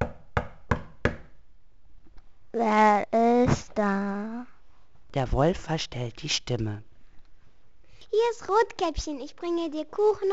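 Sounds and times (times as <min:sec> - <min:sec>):
knocking on a wooden door: 0:00.0 - 0:01.3
speech: 0:02.6 - 0:04.4, 0:05.2 - 0:06.9, 0:08.1 - 0:10.3.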